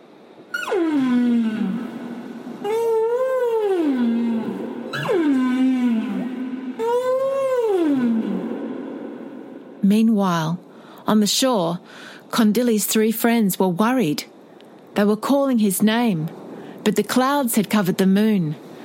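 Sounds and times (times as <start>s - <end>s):
whale calls: 0.5s - 9.8s
speech: 10.5s - 14.3s, 15.0s - 18.6s.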